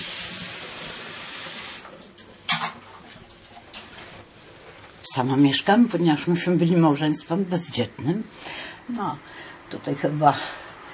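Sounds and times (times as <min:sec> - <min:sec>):
water poured into kettle for coffee: 0:00.0 - 0:01.9
speech: 0:05.2 - 0:10.6.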